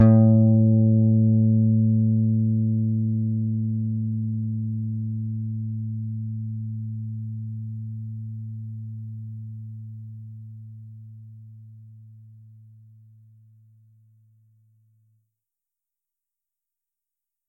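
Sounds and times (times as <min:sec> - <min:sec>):
clean guitar note with erratic clutch deluxe effect: 0:00.0 - 0:05.7.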